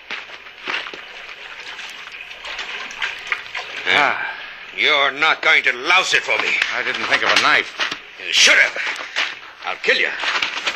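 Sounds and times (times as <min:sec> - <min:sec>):
water splashing and churning: 0:00.5 - 0:10.7
speech: 0:03.9 - 0:09.0, 0:09.7 - 0:10.4.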